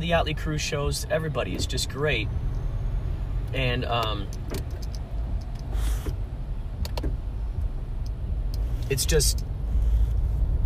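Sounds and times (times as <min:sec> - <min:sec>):
car driving on highway 294: 0:00.0 - 0:10.6
speech: 0:00.1 - 0:02.5, 0:03.5 - 0:04.8, 0:08.9 - 0:09.5.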